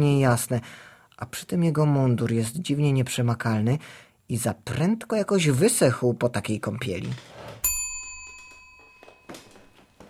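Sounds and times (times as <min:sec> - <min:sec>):
speech: 0:00.0 - 0:07.4
hand bell rung to summon a servant: 0:07.6 - 0:10.0.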